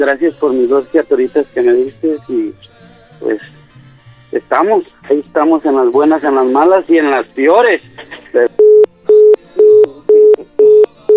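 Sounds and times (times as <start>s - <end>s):
speech: 0.0s - 3.6s, 4.3s - 8.6s
telephone busy tone after a call is cut off: 8.4s - 11.1s.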